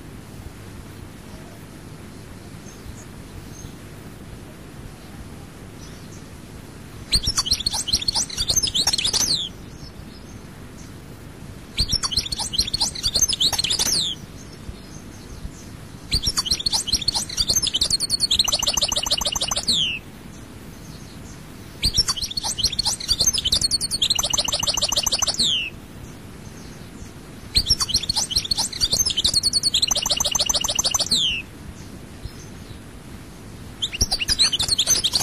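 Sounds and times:
European goldfinch singing with bright rapid twittering and trilled notes: 7.1 - 10.9, 11.8 - 32.9, 33.8 - 35.2.

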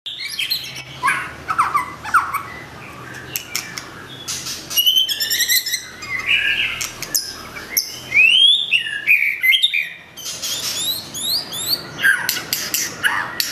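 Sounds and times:
White-rumped shama song: 0.1 - 13.4.

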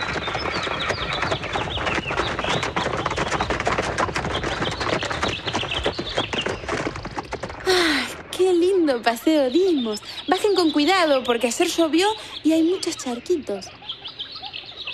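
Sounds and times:
cart rattling behind a trotting horse: 0.0 - 9.9
horse trotting while pulling a cart on a farm: 0.0 - 14.9
speech: 9.0 - 13.8.

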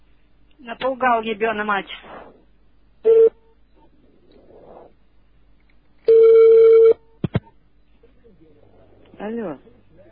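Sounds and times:
speech: 0.6 - 2.4, 9.2 - 9.7
telephone tones from an incoming long-distance call: 6.1 - 7.0.

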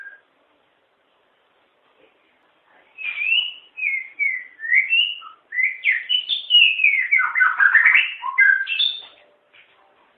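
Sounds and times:
White-rumped shama singing sliding whistles and warbling: 3.0 - 9.0.

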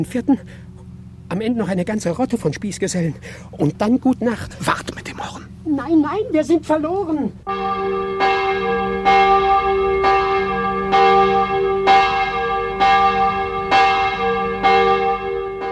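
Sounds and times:
speech: 0.0 - 0.7, 1.3 - 5.0, 5.7 - 10.0
church bell ringing in a plague-stricken village at night: 7.5 - 15.7.

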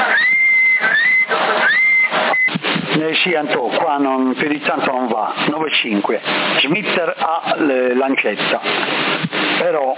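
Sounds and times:
long whistle blown into a CB radio on the 27 MHz band: 0.0 - 2.6
hissy bursts of CB radio noise: 0.0 - 9.9
speech: 3.2 - 9.9.

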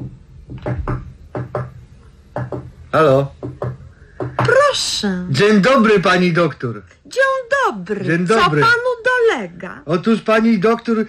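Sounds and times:
hesitant knocking on a clinic door: 0.0 - 4.8
speech: 2.9 - 3.4, 4.7 - 11.0.

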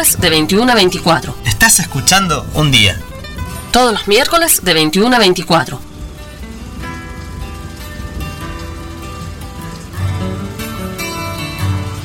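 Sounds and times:
speech: 0.0 - 3.1, 3.7 - 5.9
heavy rain: 0.0 - 12.0
low rumble: 0.2 - 8.6.

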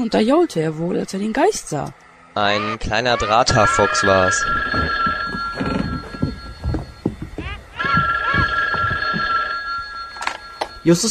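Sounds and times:
speech: 0.0 - 5.1, 10.8 - 11.0
telephone bell ringing for a long-distance call: 3.5 - 11.0.

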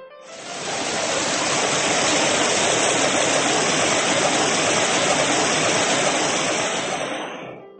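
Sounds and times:
heavy rain pouring down: 0.3 - 7.4.

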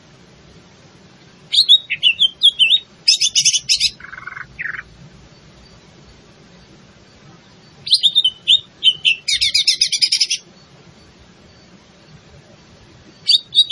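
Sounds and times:
leafbird in full song, cucak ijo: 1.5 - 4.9, 7.8 - 10.4, 13.3 - 13.7.

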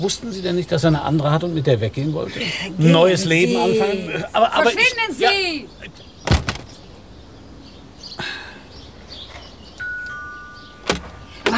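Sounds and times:
speech: 0.0 - 6.0
laughter: 2.2 - 5.4
door shutting on a jacket: 6.2 - 6.8, 10.8 - 11.5.

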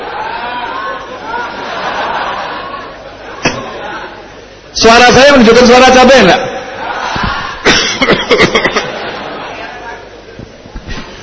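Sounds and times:
laughter: 0.0 - 4.3, 6.6 - 10.2
speech: 4.8 - 6.5
person coughing during an Islamic religious study gathering: 7.6 - 8.8.

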